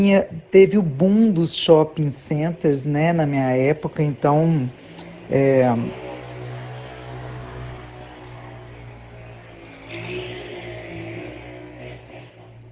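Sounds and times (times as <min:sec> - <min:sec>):
speech: 0:00.0 - 0:06.0
motorcycle engine roaring by loudly: 0:04.1 - 0:12.7.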